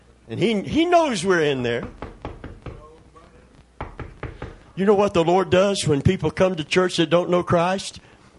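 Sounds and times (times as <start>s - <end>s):
speech: 0.3s - 2.0s, 4.8s - 8.1s
knocking on a hard surface: 1.7s - 2.9s, 3.8s - 4.6s.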